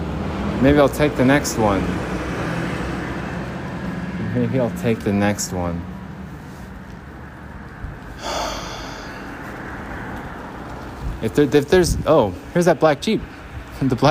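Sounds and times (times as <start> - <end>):
bus engine and road noise on a busy street: 0.0 - 13.8
speech: 0.6 - 2.1, 4.4 - 5.9, 11.2 - 14.1.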